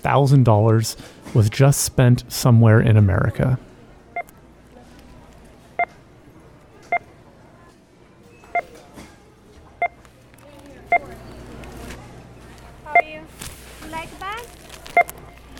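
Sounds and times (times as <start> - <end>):
speech: 0.0 - 3.7
murmuring store ambience: 0.0 - 15.5
short electronic beeps from a checkout scanner: 4.1 - 4.5, 5.6 - 7.2, 8.2 - 8.8, 9.8 - 10.1, 10.8 - 13.3, 14.8 - 15.5.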